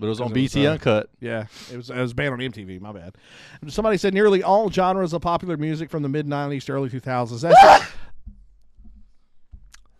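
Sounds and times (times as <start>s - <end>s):
speech: 0.0s - 8.0s
loud aggressive sneeze: 7.5s - 8.0s.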